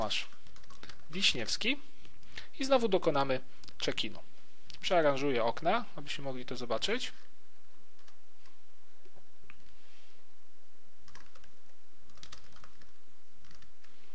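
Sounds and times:
speech: 0.1s - 0.4s, 1.1s - 1.9s, 2.6s - 7.3s
typing on a computer keyboard: 0.4s - 1.0s, 11.1s - 11.5s, 12.1s - 13.7s.

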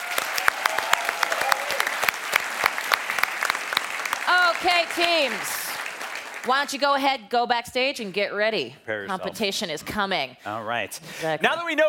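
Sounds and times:
crowd clapping for competition finalists: 0.0s - 7.0s
speech: 4.6s - 5.6s, 6.4s - 11.8s.

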